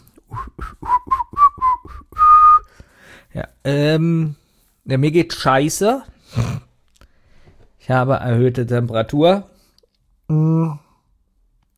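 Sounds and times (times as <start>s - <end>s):
person whistling a cheerful tune: 0.2s - 2.8s
speech: 3.4s - 6.4s, 7.9s - 9.5s, 10.3s - 10.8s.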